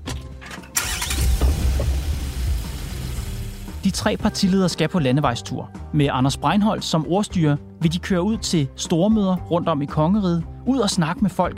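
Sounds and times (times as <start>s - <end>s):
12-metre campaign bus engine starting and rumbling: 0.4s - 3.8s
speech: 3.8s - 11.5s.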